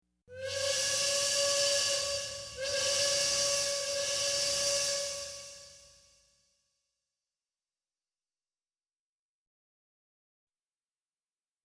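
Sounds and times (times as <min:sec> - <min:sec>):
train whistle: 0:00.3 - 0:06.4.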